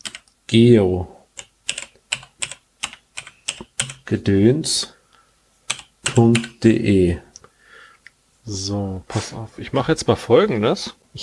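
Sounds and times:
typing a startup message on a computer keyboard: 0.0s - 0.4s, 1.3s - 4.1s, 5.7s - 6.6s
speech: 0.5s - 1.2s, 4.1s - 5.0s, 6.2s - 7.3s, 8.5s - 11.2s.

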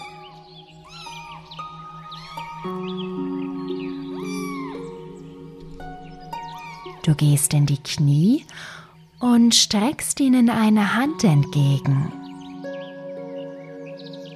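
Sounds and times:
several small kittens mewing: 0.0s - 2.7s, 4.0s - 5.2s
speech: 7.1s - 12.2s.

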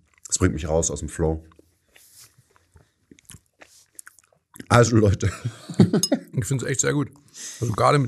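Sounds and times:
chewing a chewy snack bar into the microphone: 0.0s - 0.6s, 1.4s - 4.8s
speech: 0.3s - 1.6s, 4.7s - 8.0s
wet mouth clicks: 2.5s - 4.7s
laughter: 5.0s - 6.6s.

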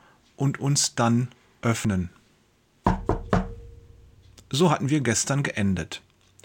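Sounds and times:
speech: 0.4s - 2.2s, 4.5s - 6.4s
soft knocking on a wooden door: 2.9s - 3.8s.

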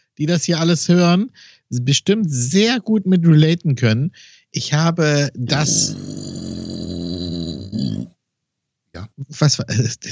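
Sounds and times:
speech: 0.2s - 6.9s, 9.1s - 10.1s
dog growling: 5.4s - 8.1s.

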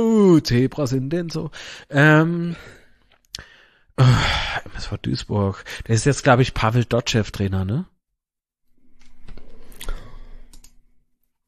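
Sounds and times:
speech: 0.0s - 2.8s, 4.0s - 7.9s
computer mouse clicks: 9.0s - 10.8s.

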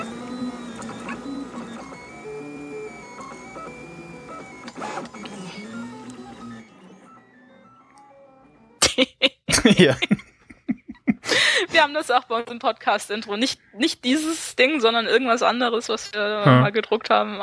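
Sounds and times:
printer stepper motors whining and whistling: 0.0s - 8.7s
laughter: 8.8s - 11.7s
speech: 9.8s - 10.2s, 11.8s - 17.4s.

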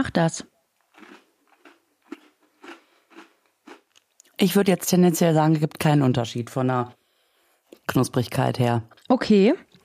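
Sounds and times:
speech: 0.0s - 0.5s, 4.4s - 7.0s, 7.9s - 9.7s
person biting and chewing crunchy chocolate bars: 0.8s - 4.3s.

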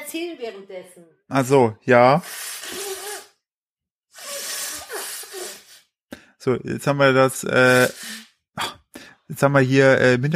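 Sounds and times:
speech: 0.1s - 2.8s, 6.4s - 8.0s, 9.3s - 10.3s
person sniffing: 2.1s - 3.4s, 4.1s - 6.4s, 7.6s - 9.2s
person blowing nose hard into a tissue: 2.2s - 3.4s, 4.1s - 6.0s, 7.6s - 8.4s.

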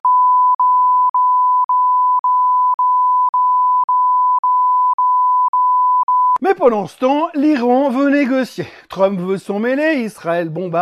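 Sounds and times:
censorship bleeps: 0.0s - 6.4s
speech: 6.5s - 10.7s.

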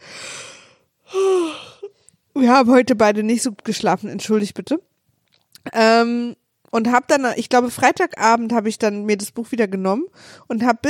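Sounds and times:
person yawning: 1.1s - 1.9s
speech: 2.4s - 4.9s, 5.6s - 10.8s.

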